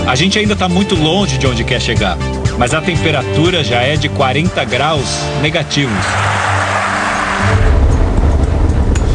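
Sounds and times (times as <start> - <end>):
speech: 0.1 - 6.5
broadband road and wind noise: 2.8 - 9.1
car engine droning while driving in arctic cold: 3.7 - 9.1.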